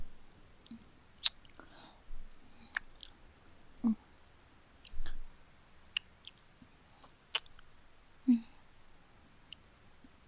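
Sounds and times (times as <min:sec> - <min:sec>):
soft wet kissing smacks between two people cuddling in a sleeping bag: 0:01.2 - 0:01.6, 0:02.7 - 0:03.1, 0:06.0 - 0:06.4, 0:07.3 - 0:07.6, 0:09.5 - 0:09.7.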